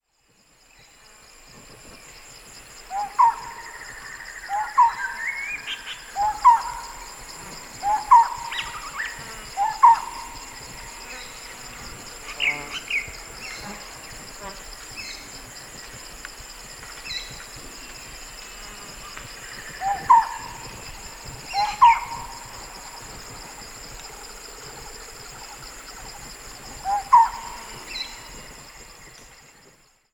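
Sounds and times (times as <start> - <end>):
Lineated Barbet calling: 2.9 - 11.4, 19.5 - 23.0, 26.8 - 28.2.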